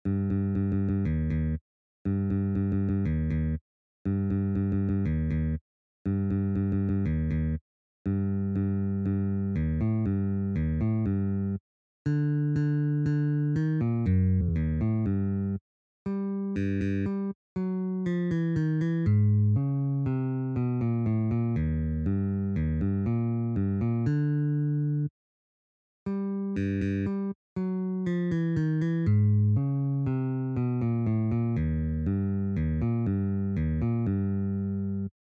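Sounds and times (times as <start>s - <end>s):
bass guitar playing a march: 0.1s - 15.6s, 16.5s - 25.1s, 26.5s - 35.1s.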